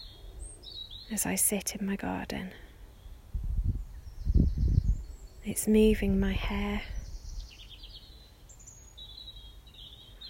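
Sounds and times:
birds chirping and whistling in a garden: 0:00.0 - 0:01.1, 0:02.9 - 0:05.4, 0:06.5 - 0:10.2
speech: 0:01.1 - 0:02.7, 0:05.5 - 0:07.0.

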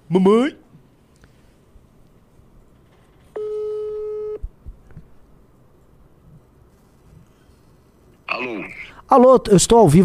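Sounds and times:
speech: 0:00.1 - 0:00.6, 0:09.2 - 0:10.0
steady telephone tone on an outgoing call: 0:03.3 - 0:04.4.

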